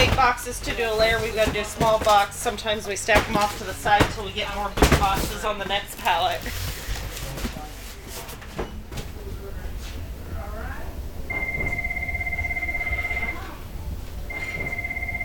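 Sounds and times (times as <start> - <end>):
speech: 0.0 - 6.7
clatter and knocks in a noisy room: 0.0 - 9.4
telephone ringing in electronic bursts: 11.3 - 15.2.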